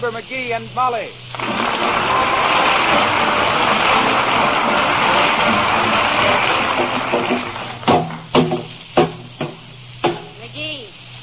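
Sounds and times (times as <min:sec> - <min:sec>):
speech: 0:00.0 - 0:02.3
broadband noise: 0:01.0 - 0:10.9
hammer strikes on sheet metal denting out a car body: 0:07.2 - 0:10.4.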